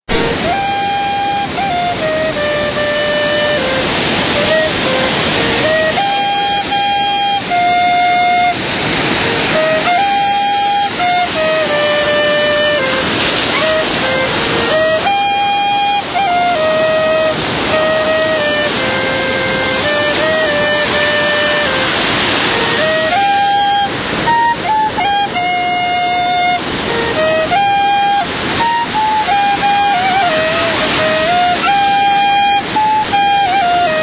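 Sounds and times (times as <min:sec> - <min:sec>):
whistle playing on a Pacific beach: 0:00.1 - 0:34.0.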